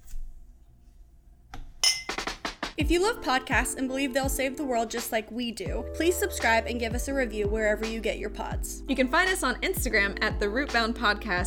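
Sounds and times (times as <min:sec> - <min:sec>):
two glasses clinking in a toast: 0:01.8 - 0:02.2
speech: 0:02.8 - 0:11.4.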